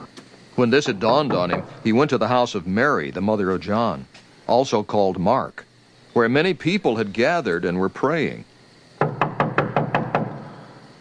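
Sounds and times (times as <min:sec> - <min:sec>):
speech: 0:00.6 - 0:08.5
knocking on a door: 0:01.2 - 0:01.8, 0:09.0 - 0:10.5.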